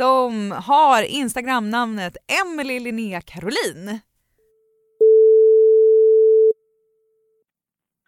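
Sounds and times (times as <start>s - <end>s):
speech: 0.0s - 4.1s
outgoing telephone ringing tone: 5.0s - 6.6s.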